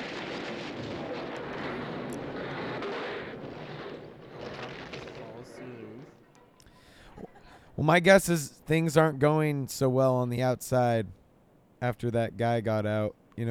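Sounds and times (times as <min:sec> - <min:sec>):
helicopter rotor and engine roaring: 0:00.0 - 0:06.4
speech: 0:07.8 - 0:11.2, 0:11.8 - 0:13.4.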